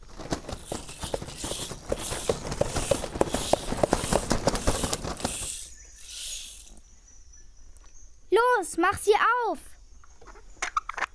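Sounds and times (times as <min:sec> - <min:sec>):
children running footsteps: 0:00.0 - 0:06.7
speech: 0:08.8 - 0:09.7.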